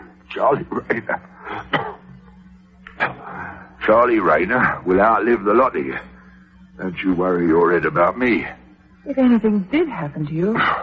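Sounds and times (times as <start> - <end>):
faint steady hum: 0.0 - 10.8
speech: 0.4 - 1.8, 3.9 - 6.1, 6.8 - 10.8
man coughing and clearing his throat: 1.4 - 2.1, 3.0 - 3.4.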